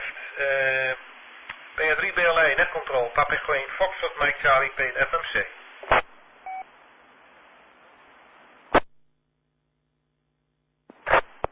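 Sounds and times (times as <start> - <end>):
radio static hissing: 0.0 - 6.1, 10.9 - 11.5
faint radio station buried in static noise: 0.0 - 9.0, 10.8 - 11.5
speech: 0.4 - 0.8, 1.9 - 5.6.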